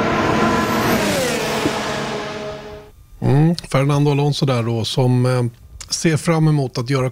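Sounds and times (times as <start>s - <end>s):
V10 Formula One car engine revving: 0.0s - 2.9s
speech: 3.7s - 7.1s.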